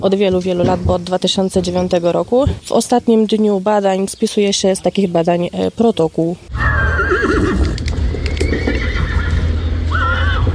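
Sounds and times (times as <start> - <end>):
speech: 0.0 - 7.6
horse hoof clops: 0.0 - 10.5
horse whinnying with a wavering shaky call: 6.5 - 10.5.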